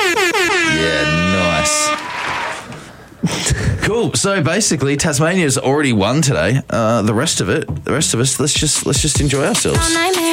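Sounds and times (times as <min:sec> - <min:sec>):
air horn sound effect blasts: 0:00.0 - 0:02.7
speech: 0:04.0 - 0:10.3.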